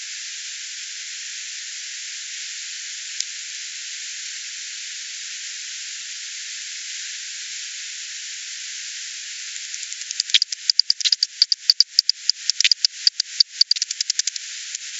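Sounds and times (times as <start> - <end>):
steady hiss: 0.0 - 14.9
bat echolocation pulses: 9.5 - 14.9.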